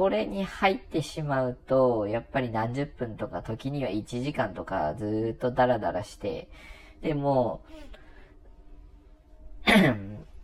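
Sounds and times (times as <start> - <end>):
speech: 0.0 - 8.0, 9.7 - 10.2
person clearing throat because of phlegm: 9.6 - 10.3.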